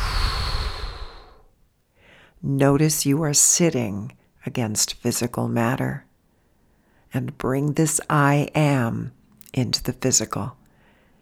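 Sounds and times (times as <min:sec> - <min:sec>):
deep exhale through the mouth during a guided breathing exercise: 0:00.0 - 0:02.3
speech: 0:02.4 - 0:06.1, 0:07.1 - 0:10.6.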